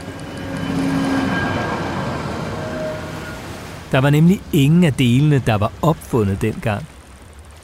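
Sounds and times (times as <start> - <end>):
faint metallic squeals of train on rails: 0.0 - 3.8
train rumbling along the rails: 0.0 - 5.9
speech: 3.9 - 6.9.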